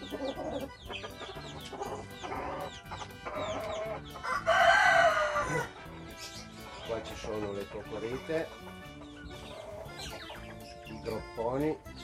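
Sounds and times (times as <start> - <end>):
Araucana hens clucking: 0.0 - 12.0
busy chirping: 0.0 - 12.0
rooster crowing: 4.2 - 5.8
speech: 7.7 - 9.0, 11.0 - 12.0.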